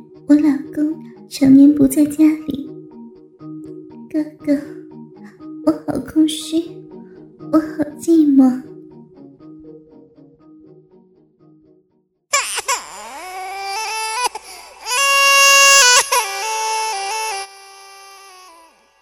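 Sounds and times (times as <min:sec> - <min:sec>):
speech: 0:01.3 - 0:02.6, 0:04.2 - 0:04.7, 0:06.3 - 0:06.8, 0:07.5 - 0:08.6
baby crying: 0:12.3 - 0:19.0.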